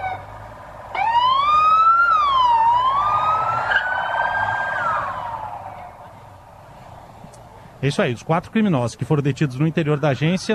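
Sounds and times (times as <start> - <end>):
police siren wailing as police vehicles pull away: 0.0 - 6.3
low engine rumble of police vehicles: 0.0 - 10.5
speech: 7.8 - 10.5.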